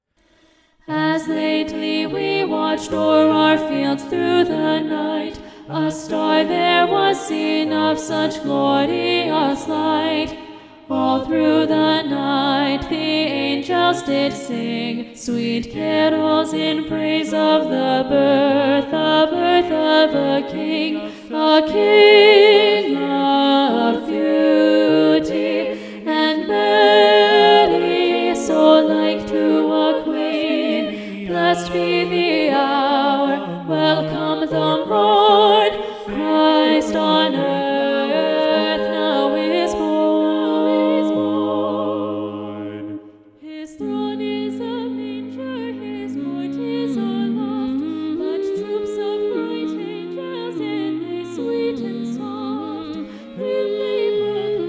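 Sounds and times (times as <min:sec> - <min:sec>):
SATB choir singing with alto voice predominant: 0:00.8 - 0:54.6.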